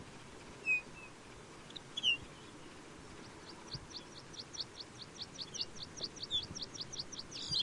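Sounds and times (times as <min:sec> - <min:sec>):
steady low background noise: 0:00.0 - 0:07.6
Lapland bunting sharp high chirps: 0:00.6 - 0:07.6.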